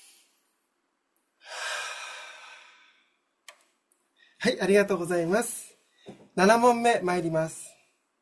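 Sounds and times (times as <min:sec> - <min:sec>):
deep breath: 0:01.4 - 0:03.3
speech: 0:04.4 - 0:05.6, 0:06.4 - 0:07.6.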